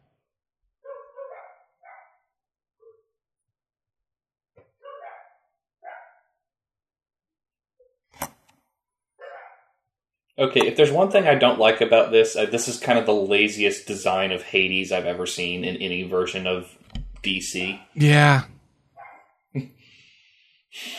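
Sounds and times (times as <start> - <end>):
puppy barking: 0.8 - 2.2, 4.8 - 6.2, 9.2 - 9.6, 19.0 - 19.3
speech: 10.4 - 18.6, 19.6 - 19.8, 20.7 - 20.9.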